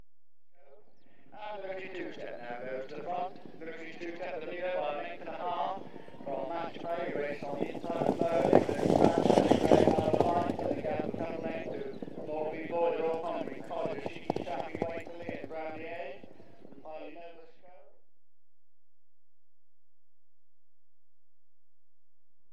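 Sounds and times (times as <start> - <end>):
horses in point to point racing passing in a field: 1.1 - 17.6.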